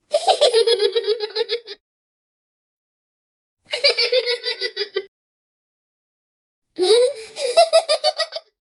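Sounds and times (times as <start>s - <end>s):
children giggling: 0.1s - 1.8s, 3.7s - 5.1s, 6.8s - 8.6s.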